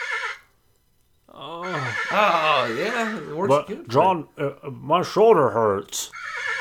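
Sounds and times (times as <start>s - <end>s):
horse whinnying: 1.4s - 3.6s, 6.2s - 6.5s
speech: 2.1s - 6.4s.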